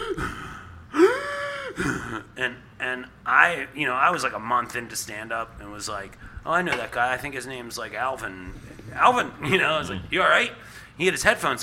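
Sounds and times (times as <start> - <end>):
man imitating deep heavy breathing of someone hunched over: 0.0 - 2.3, 8.4 - 10.9
speech: 1.8 - 11.6.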